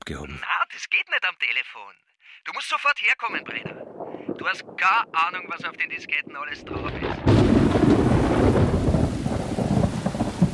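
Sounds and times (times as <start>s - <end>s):
speech: 0.1s - 8.6s
deep rumbling thunder: 3.3s - 10.5s
pouring rain hiss in a thunderstorm: 7.3s - 10.5s.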